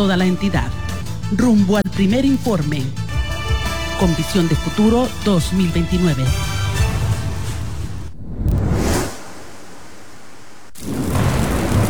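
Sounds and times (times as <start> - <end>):
speech: 0.0 - 3.0, 4.0 - 6.5
steady hiss of heavy rain: 3.2 - 8.2, 10.3 - 11.8
deep rolling thunder rumbles: 6.3 - 11.8.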